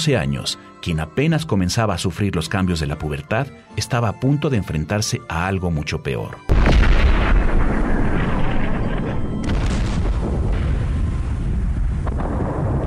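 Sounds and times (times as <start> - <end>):
speech: 0.0 - 6.8
dense continuous rumble of battle: 6.5 - 12.8
heavy booming cannon fire: 6.5 - 12.8.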